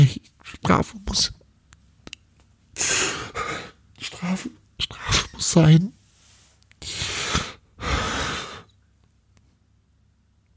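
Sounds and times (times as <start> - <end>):
speech: 0.0 - 1.4, 4.2 - 6.0
person inhaling deeply: 6.8 - 8.7.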